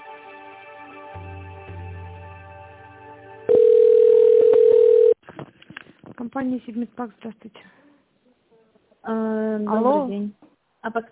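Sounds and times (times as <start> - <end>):
telephone ringback tone during call transfer: 3.5 - 5.2
speech: 6.4 - 7.8, 9.0 - 11.0.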